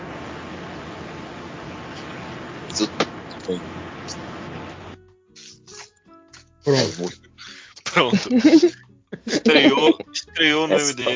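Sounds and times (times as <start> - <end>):
roaring rumble and hiss inside a moving bus through a call microphone: 0.0 - 5.0, 8.0 - 10.0, 10.6 - 11.1
speech: 2.8 - 4.2, 6.7 - 7.3, 7.9 - 11.1
laughter: 6.7 - 11.1.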